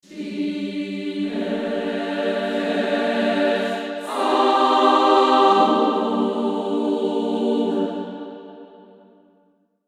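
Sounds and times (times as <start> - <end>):
female choir singing close to the microphone: 0.0 - 8.9.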